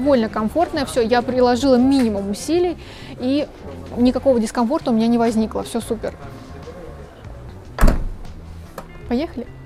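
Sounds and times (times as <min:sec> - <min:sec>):
speech: 0:00.0 - 0:06.4, 0:09.1 - 0:09.6
car power tailgate closing over the boot: 0:07.7 - 0:08.9
car tailgate rattle: 0:07.8 - 0:08.3.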